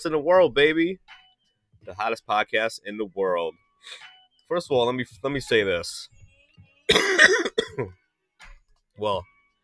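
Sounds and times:
speech: 0.0s - 1.2s, 1.8s - 6.2s, 6.9s - 8.0s, 9.0s - 9.3s
person coughing: 6.9s - 7.9s.

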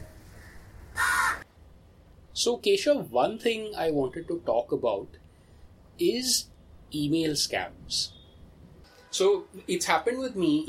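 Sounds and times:
low hum: 0.0s - 10.6s
crow cawing: 0.4s - 1.4s
speech: 2.4s - 5.2s, 6.0s - 8.2s, 9.2s - 10.6s.

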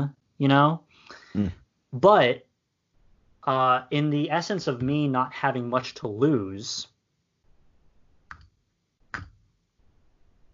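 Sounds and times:
speech: 0.0s - 2.5s, 3.4s - 6.9s
computer mouse click: 8.3s - 8.5s.

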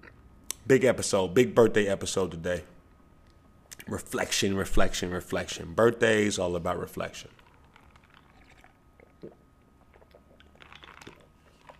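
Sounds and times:
speech: 0.7s - 2.8s, 3.9s - 7.4s
lip smacks: 3.6s - 3.9s, 8.1s - 11.7s
person sipping juice: 7.3s - 11.7s
soft gulps: 7.3s - 11.7s
small wet mouth clicks: 7.9s - 11.7s.

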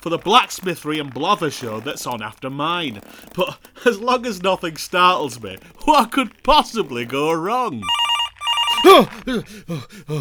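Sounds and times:
speech: 0.0s - 8.0s, 8.8s - 10.1s
telephone ringing with electronic tone and warbling chirps: 7.8s - 9.1s.

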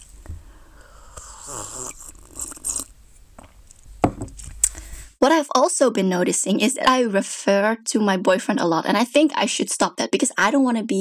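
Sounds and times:
slurping mate tea through a metal straw: 1.0s - 3.0s
speech: 5.2s - 10.9s.

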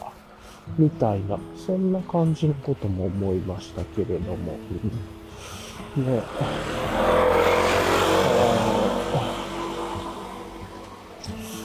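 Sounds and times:
speech: 0.7s - 7.3s
motorcycle engine roaring past on the road: 5.7s - 11.3s.

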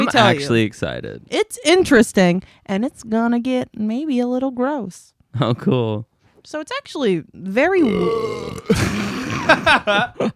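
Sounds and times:
speech: 0.1s - 10.3s
long deep rumbling burp: 7.8s - 9.7s
short voiced chuckles or grunts: 8.5s - 10.3s.

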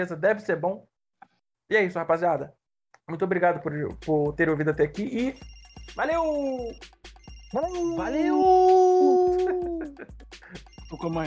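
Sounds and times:
speech: 0.0s - 0.9s, 1.7s - 9.1s, 10.0s - 11.2s
person imitating a wolf howl: 7.7s - 10.0s
laughter: 9.2s - 10.1s.

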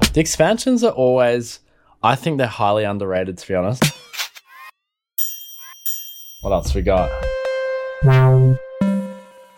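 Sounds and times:
speech: 0.2s - 4.1s, 6.4s - 7.3s, 8.0s - 8.6s
synth bass preset playing thick buzzy notes: 8.0s - 9.2s.

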